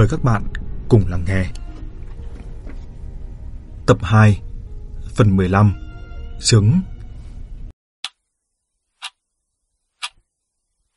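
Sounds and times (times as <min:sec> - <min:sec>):
speech: 0:00.0 - 0:01.6, 0:03.9 - 0:04.5, 0:05.2 - 0:05.8, 0:06.4 - 0:06.9
clock outside a house ticking: 0:10.0 - 0:10.2.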